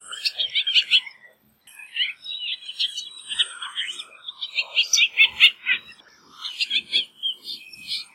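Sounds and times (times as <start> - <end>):
White-breasted Woodswallow calls: 0.0 - 8.1.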